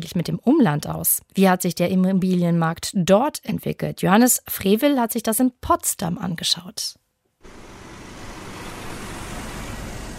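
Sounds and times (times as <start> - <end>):
speech: 0.0 - 7.6
concrete mixer trucks driving up in a long line beside a park in Potsdam: 7.4 - 10.1.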